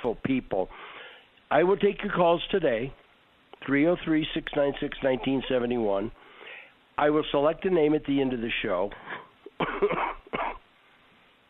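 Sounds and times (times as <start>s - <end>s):
speech: 0.0s - 3.0s, 3.6s - 6.2s, 7.0s - 10.2s
person coughing: 9.0s - 10.6s.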